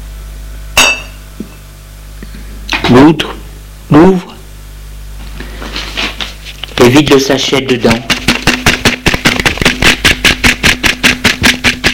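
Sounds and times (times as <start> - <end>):
low steady hum: 0.0 - 11.9
glass cognac bottle being picked up: 0.8 - 1.2
speech: 2.9 - 4.3, 6.9 - 8.2.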